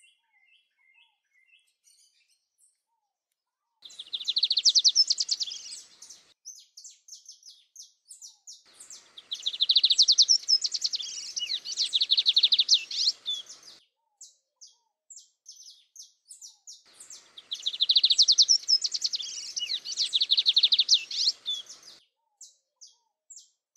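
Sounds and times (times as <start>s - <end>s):
lined seedeater buzzy trill of high notes: 3.9s - 6.2s, 8.8s - 13.8s, 16.9s - 22.0s
lined seedeater sharp high chips: 8.9s - 13.7s, 17.0s - 22.0s.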